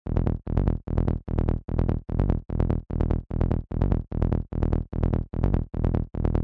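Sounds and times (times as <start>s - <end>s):
fast trance bassline at 148 BPM: 0.1s - 6.4s.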